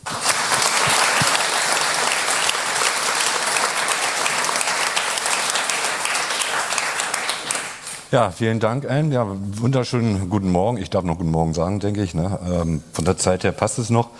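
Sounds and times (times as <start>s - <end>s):
sizable audience applauding a lecturer: 0.0s - 8.1s
speech: 8.1s - 14.1s.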